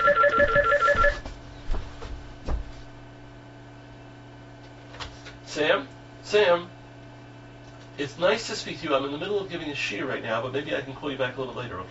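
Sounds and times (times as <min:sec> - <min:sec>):
telephone ringing with electronic trill: 0:00.0 - 0:01.2
quiet indoor hum: 0:00.0 - 0:11.8
speech: 0:05.6 - 0:06.8, 0:08.0 - 0:11.8.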